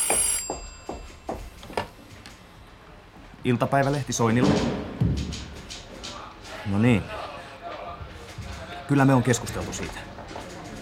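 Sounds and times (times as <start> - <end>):
telephone ringing: 0.0 - 1.9
speech: 3.4 - 4.8, 6.7 - 7.2, 8.9 - 10.1.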